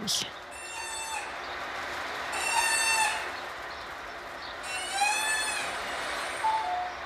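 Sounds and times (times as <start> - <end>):
speech: 0.1 - 0.4
seabird-like calls from homemade bicycle-tube noisemakers: 0.6 - 1.4, 2.4 - 3.4, 4.6 - 6.9.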